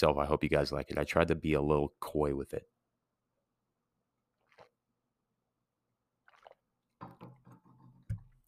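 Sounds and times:
speech: 0.0 - 2.8
person sipping and gulping a drink: 4.2 - 5.1, 6.0 - 8.3.

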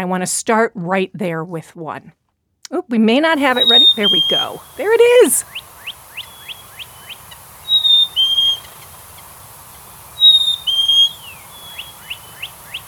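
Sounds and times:
speech: 0.0 - 5.6
faint steady low noise: 3.2 - 12.8
bird call with short quick chirps and high whistled phrases: 3.4 - 12.8.

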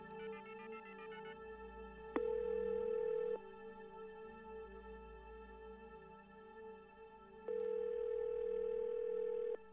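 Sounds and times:
telephone redial tones: 2.2 - 3.4, 7.5 - 9.6.

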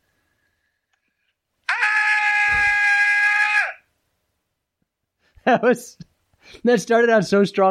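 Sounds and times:
man's mock death scream: 1.6 - 3.9
speech: 5.5 - 7.6.

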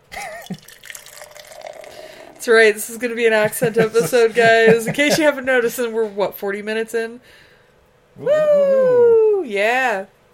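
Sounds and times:
unfiltered German-style Keller beer pouring into a glass: 0.2 - 3.0
speech: 0.5 - 0.9, 2.4 - 7.5, 8.2 - 10.2
laughter: 3.3 - 5.4.

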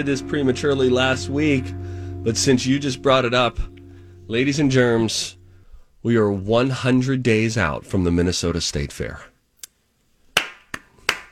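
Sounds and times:
speech: 0.0 - 5.4, 6.0 - 9.3
sparse smattering of applause in a small room: 10.4 - 11.3.

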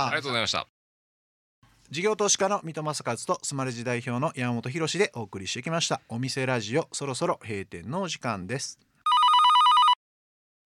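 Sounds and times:
speech: 0.0 - 0.7, 1.9 - 8.9
telephone bell ringing in rapid trilling pulses: 9.1 - 10.0.

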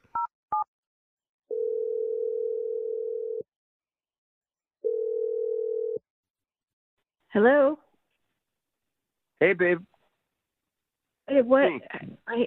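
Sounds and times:
phone ringing tone: 1.5 - 3.4, 4.8 - 6.0
speech: 7.3 - 7.8, 9.4 - 9.9, 11.3 - 12.4.

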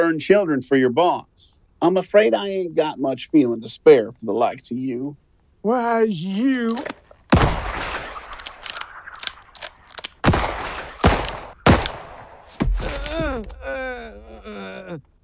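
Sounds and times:
speech: 0.0 - 7.0
pained, wavering cry of rising and falling pitch: 6.0 - 6.9, 12.8 - 15.1
gunshots in an audio drama: 7.3 - 13.1.

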